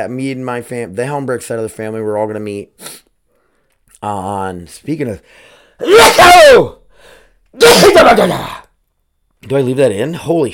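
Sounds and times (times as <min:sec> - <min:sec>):
speech: 0:00.0 - 0:03.0, 0:04.0 - 0:08.6, 0:09.4 - 0:10.5
loud sneeze: 0:05.8 - 0:06.7, 0:07.6 - 0:08.6.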